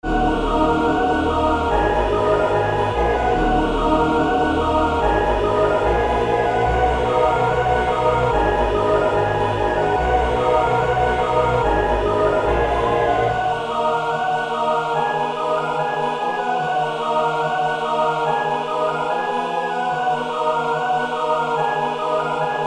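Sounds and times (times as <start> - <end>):
vocals in D minor at 145 BPM: 0.0 - 22.6.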